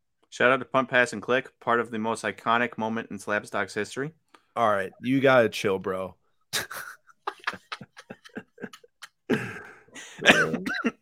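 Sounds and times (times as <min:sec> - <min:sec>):
speech: 0:00.3 - 0:06.9
laughter: 0:06.6 - 0:10.9
person coughing: 0:09.3 - 0:10.9
throat clearing: 0:09.4 - 0:10.9.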